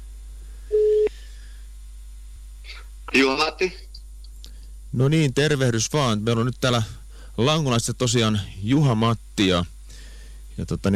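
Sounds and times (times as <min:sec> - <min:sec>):
single steady telephone line tone while dialing out: 0:00.7 - 0:01.1
speech: 0:03.1 - 0:03.9, 0:05.0 - 0:09.7, 0:10.6 - 0:10.9.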